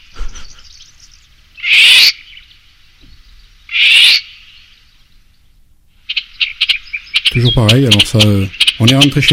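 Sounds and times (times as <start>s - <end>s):
faint birdsong: 0.0s - 9.3s
golden oriole alarm call: 1.6s - 2.5s, 3.7s - 4.6s, 6.1s - 9.3s
speech: 7.4s - 9.3s.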